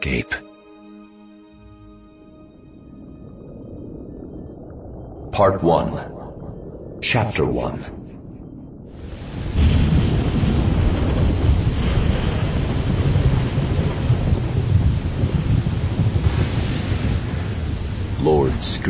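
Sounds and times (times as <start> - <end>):
speech: 0.0 - 0.4, 5.4 - 6.2, 7.1 - 8.0, 18.2 - 18.8
gusting wind: 2.2 - 18.8
deep rumbling thunder: 2.4 - 18.8
heavy rain hammering down: 8.9 - 18.8.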